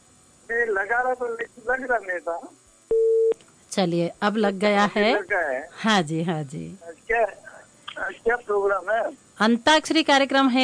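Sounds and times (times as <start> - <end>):
speech: 0.7 - 2.6, 3.8 - 7.4, 8.0 - 10.6
telephone line tone while dropped call is reconnected: 2.9 - 3.4.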